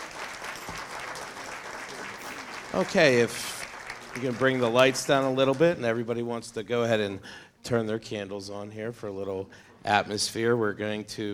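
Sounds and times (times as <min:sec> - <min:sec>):
audience applause after a live music set: 0:00.0 - 0:05.8
speech: 0:02.7 - 0:03.6, 0:04.2 - 0:11.3.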